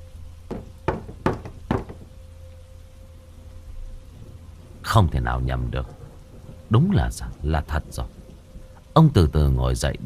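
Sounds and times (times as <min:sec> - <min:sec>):
faint steady hum: 0:00.0 - 0:10.0
loud clear knocks at night: 0:00.5 - 0:02.1
speech: 0:04.9 - 0:06.0, 0:06.7 - 0:08.2, 0:09.0 - 0:10.0.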